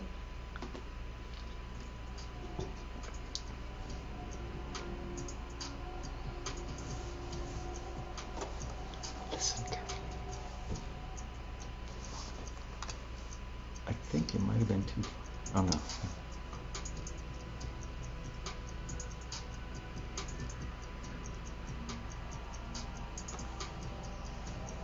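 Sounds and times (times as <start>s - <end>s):
low continuous hum: 0.0s - 24.8s
stopwatch ticking in double time: 1.7s - 24.8s
speech: 14.9s - 16.2s.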